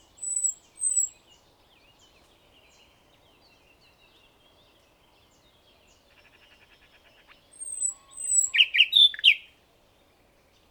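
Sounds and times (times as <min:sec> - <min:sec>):
common nightingale Luscinia megarhynchos song: 0:00.0 - 0:02.0, 0:07.6 - 0:09.5.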